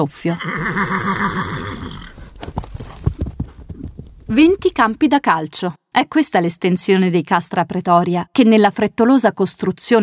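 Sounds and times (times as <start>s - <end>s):
speech: 0.0s - 2.2s, 4.3s - 10.0s
horse whinnying: 0.2s - 2.4s
horse hooves clopping on hard ground: 1.8s - 5.2s.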